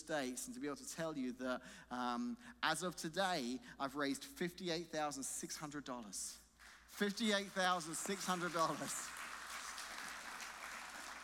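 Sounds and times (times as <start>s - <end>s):
speech: 0.1s - 9.2s
audience applause: 7.6s - 11.2s.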